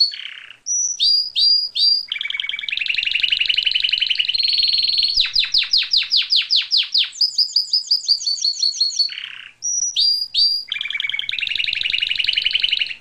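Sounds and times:
Atlantic canary singing: 0:00.0 - 0:12.9.

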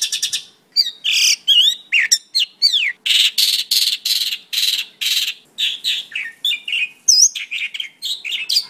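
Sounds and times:
pakling songbird song for training cage birds: 0:00.0 - 0:08.6.

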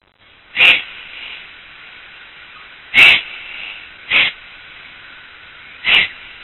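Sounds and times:
Bubo bubo eagle owl: 0:00.5 - 0:01.3, 0:02.5 - 0:04.4, 0:05.6 - 0:06.2.

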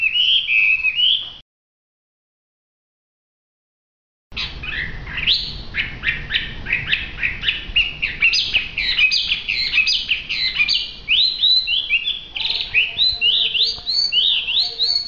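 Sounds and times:
hwamei pouring out a fast varied whistled song: 0:00.0 - 0:01.4, 0:04.4 - 0:15.0.

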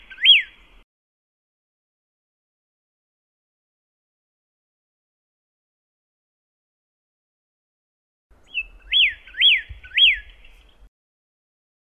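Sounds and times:
pyrrhuloxia singing thin and slurred whistles: 0:00.0 - 0:00.8, 0:08.4 - 0:10.9.

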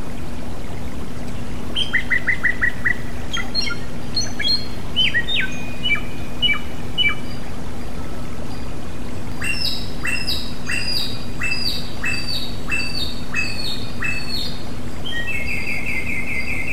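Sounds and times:
song for cage birds: 0:00.0 - 0:16.7
steady low hum: 0:00.0 - 0:16.7.

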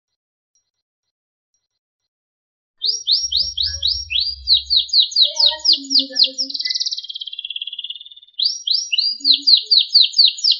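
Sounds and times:
canary song: 0:02.8 - 0:10.5
low background rumble: 0:03.2 - 0:05.7
speech: 0:04.7 - 0:06.8, 0:09.3 - 0:10.2.

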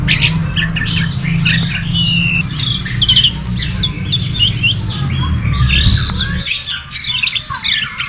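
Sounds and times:
orange-headed thrush singing varied whistles and chattering notes: 0:00.1 - 0:08.0
steady low hum: 0:05.1 - 0:06.5.

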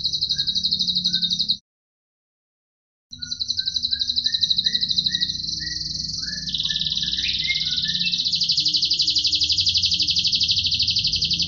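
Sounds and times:
canary singing a trill: 0:00.0 - 0:01.6, 0:03.1 - 0:11.4.

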